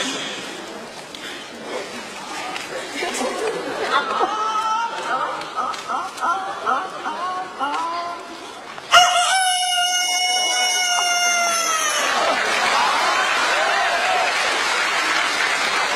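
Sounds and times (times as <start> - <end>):
laughter: 1.6 - 7.8, 11.3 - 15.9
man's voice imitating a rooster crowing: 8.9 - 12.1
audience applause: 11.0 - 15.9.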